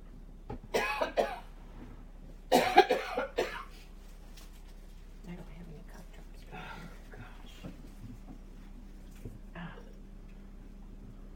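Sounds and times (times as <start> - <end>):
fit of harsh coughing: 0.7 - 1.5, 2.5 - 3.8.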